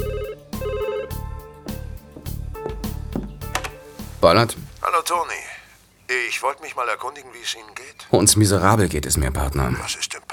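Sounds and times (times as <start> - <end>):
telephone ringing: 0.0 - 1.2
speech: 4.2 - 5.5, 6.1 - 10.2.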